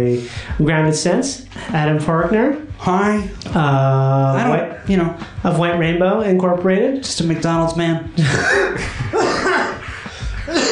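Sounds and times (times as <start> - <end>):
speech: 0.0 - 9.1
person coughing inside a small tank: 8.2 - 9.8, 10.5 - 10.7
laughter-like breaths: 8.8 - 10.6.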